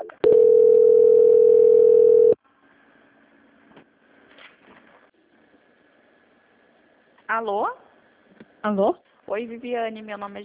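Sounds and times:
telephone line tone during call transfer: 0.0s - 2.4s
speech: 7.4s - 7.8s, 8.6s - 10.4s.

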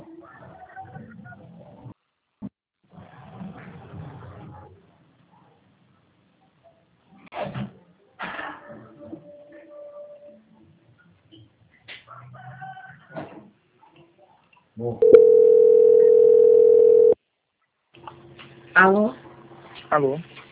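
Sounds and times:
speech: 14.8s - 15.5s, 18.8s - 19.2s, 19.9s - 20.3s
telephone line tone during a call transfer to a bank: 15.0s - 17.2s.

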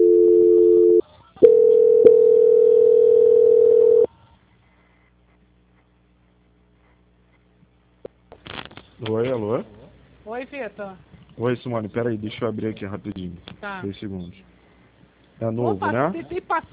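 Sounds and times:
steady loud telephone line hum during call transfer: 0.0s - 4.1s
speech: 10.6s - 14.6s, 15.4s - 16.7s.

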